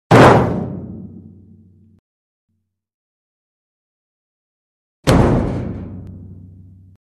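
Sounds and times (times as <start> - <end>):
body hitting metal barrel low and sustained: 0.1 - 1.5, 5.0 - 7.0.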